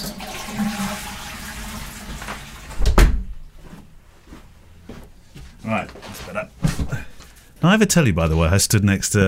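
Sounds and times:
toilet flushing behind a door: 0:00.0 - 0:02.8
speech: 0:07.6 - 0:09.2.

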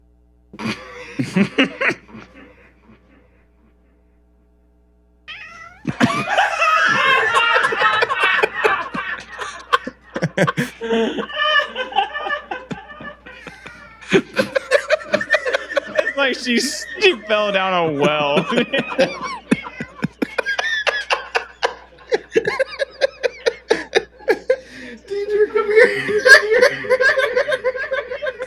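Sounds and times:
laughter: 0:00.6 - 0:04.0, 0:05.7 - 0:28.4
speech: 0:01.3 - 0:01.9, 0:16.4 - 0:19.3
cat meowing warped by a voice effect: 0:05.3 - 0:06.0.

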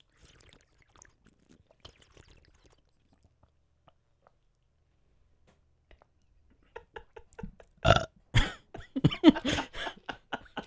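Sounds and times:
person gulping and swallowing water: 0:00.0 - 0:04.4, 0:07.8 - 0:08.1
loud drawn-out croaking burp after drinking water: 0:07.8 - 0:08.1
shorter belches: 0:07.8 - 0:08.1
laughter: 0:08.4 - 0:10.6.

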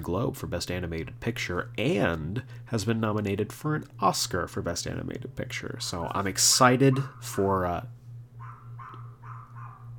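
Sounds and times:
speech: 0:00.0 - 0:08.0
steady low electrical hum: 0:00.0 - 0:09.9
neighbor's dog barking: 0:06.9 - 0:07.4, 0:08.4 - 0:09.9.

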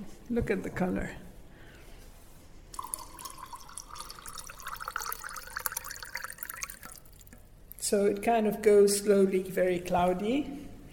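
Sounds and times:
speech: 0:00.3 - 0:01.3, 0:07.9 - 0:10.7
water pouring into a glass of arak: 0:02.7 - 0:07.4.

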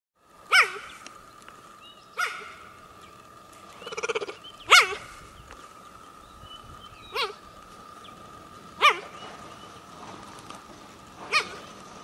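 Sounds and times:
faint steady tone: 0:00.2 - 0:12.0
wild animal giving high puppy-like barks: 0:00.5 - 0:01.0, 0:02.2 - 0:02.8, 0:03.8 - 0:05.3, 0:07.0 - 0:07.5, 0:08.8 - 0:09.2, 0:11.2 - 0:11.7.

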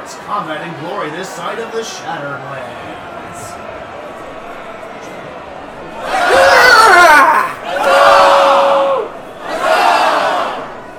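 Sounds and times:
stadium crowd cheering at a combat sports exhibition: 0:00.0 - 0:10.9
speech: 0:00.3 - 0:03.5
voices shouting: 0:04.1 - 0:10.7.

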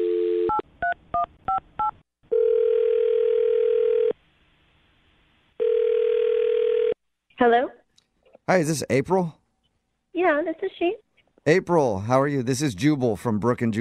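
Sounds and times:
telephone dial tone: 0:00.0 - 0:00.6, 0:02.3 - 0:04.2, 0:05.6 - 0:07.0
telephone ringing tone: 0:00.0 - 0:00.6, 0:01.8 - 0:04.2, 0:05.6 - 0:07.0
speech: 0:07.4 - 0:07.8, 0:08.5 - 0:09.4, 0:10.2 - 0:13.7.

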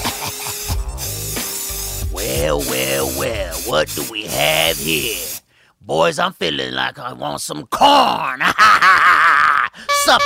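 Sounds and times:
laughter: 0:00.0 - 0:01.0, 0:08.4 - 0:09.8
spray paint can spraying on a wall: 0:00.0 - 0:05.4
speech: 0:02.4 - 0:05.2, 0:05.9 - 0:10.2.

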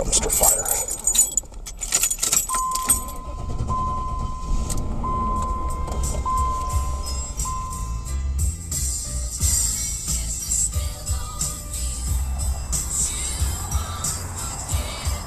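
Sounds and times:
keys jangling: 0:00.0 - 0:03.3
hearse engine humming: 0:00.0 - 0:15.2
speech: 0:00.1 - 0:00.9
car electronic chime tones: 0:02.5 - 0:08.4.

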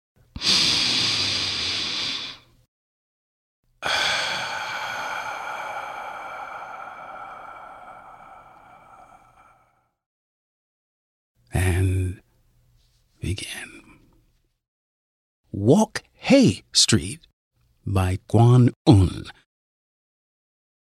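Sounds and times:
deep breath drawn in as a breathing exercise: 0:00.4 - 0:02.5, 0:03.8 - 0:10.0
long steady tone: 0:03.9 - 0:09.9
speech: 0:15.6 - 0:19.4.

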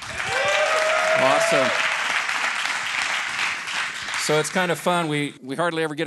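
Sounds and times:
live studio audience cheering and applauding: 0:00.0 - 0:04.7
speech: 0:01.2 - 0:01.9, 0:04.3 - 0:06.0.

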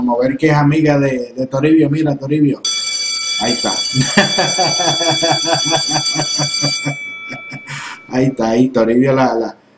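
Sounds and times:
speech: 0:00.0 - 0:02.8, 0:03.4 - 0:09.6
loud electric bell ringing: 0:02.6 - 0:08.5
laughter: 0:04.0 - 0:07.9.

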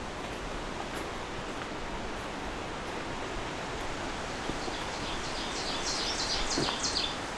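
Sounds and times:
steady wind noise: 0:00.0 - 0:07.3
ovenbird singing repeated bright phrases: 0:04.6 - 0:07.2.

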